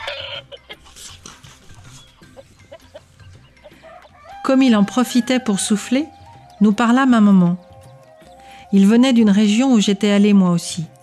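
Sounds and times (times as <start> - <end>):
hens clucking: 0.0 - 6.8
low steady farmyard background: 0.0 - 11.0
speech: 4.5 - 7.6, 8.7 - 10.9.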